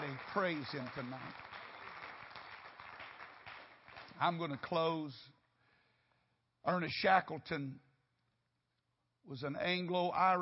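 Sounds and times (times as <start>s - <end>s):
audience clapping hands, dense continuous patter of many hands: 0.0s - 4.8s
speech: 0.4s - 1.5s, 4.2s - 5.4s, 6.6s - 7.8s, 9.2s - 10.4s.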